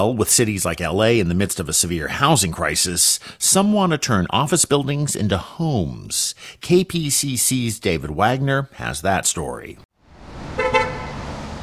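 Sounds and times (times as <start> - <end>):
speech: 0.0 - 9.9
cars passing on Fifth Street in downtown Los Angeles: 10.0 - 11.6
car horn honking: 10.5 - 11.5.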